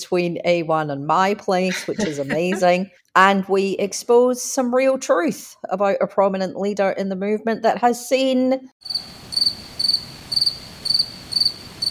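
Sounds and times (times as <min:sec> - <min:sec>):
speech: 0:00.0 - 0:10.6
laughter: 0:01.7 - 0:02.8
crickets chirping sound effect: 0:08.8 - 0:11.8
faint steady hiss: 0:08.9 - 0:11.8.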